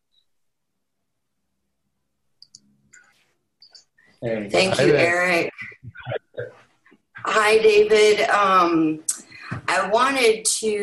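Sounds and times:
computer mouse clicking a microphone unmute button: 0:02.4 - 0:03.8
speech: 0:04.2 - 0:06.6, 0:07.2 - 0:10.8.

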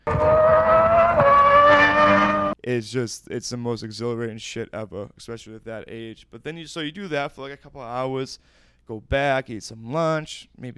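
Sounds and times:
race car engine accelerating hard with nitrous boost: 0:00.1 - 0:02.6
speech: 0:02.6 - 0:10.7.

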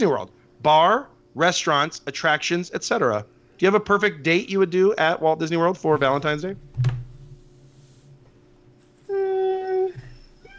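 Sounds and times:
speech: 0:00.0 - 0:06.9
quiet background hum: 0:00.0 - 0:10.5
drawn-out cat meow: 0:09.1 - 0:10.5.

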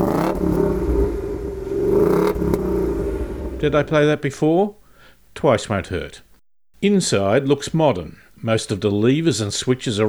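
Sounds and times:
large non-turbo petrol car engine revving: 0:00.0 - 0:04.0
speech: 0:03.6 - 0:04.8, 0:05.4 - 0:06.2, 0:06.8 - 0:10.0.

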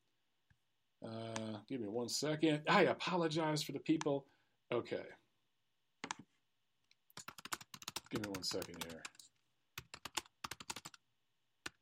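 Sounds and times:
speech: 0:01.0 - 0:05.2, 0:08.1 - 0:09.2
keyboard typing a message: 0:07.1 - 0:11.0.

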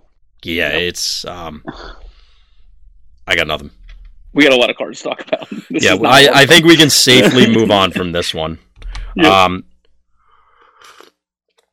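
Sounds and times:
speech: 0:00.4 - 0:02.0, 0:03.3 - 0:03.8, 0:04.4 - 0:09.7
laughter: 0:05.2 - 0:08.3
person slurping a quick sip of a drink: 0:10.7 - 0:11.2.

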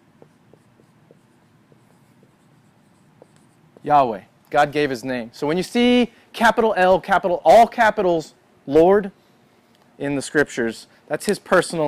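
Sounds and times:
steady low hum: 0:00.0 - 0:11.8
pen scratching while handwriting Hebrew letters: 0:00.2 - 0:03.6
speech: 0:03.8 - 0:09.2, 0:10.0 - 0:11.8.

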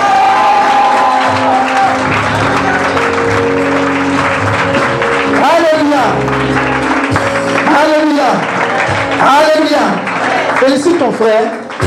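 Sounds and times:
congregation shouting and whooping at a church service: 0:00.0 - 0:03.3
congregation clapping at a church service: 0:00.0 - 0:11.8
speech: 0:11.0 - 0:11.6.

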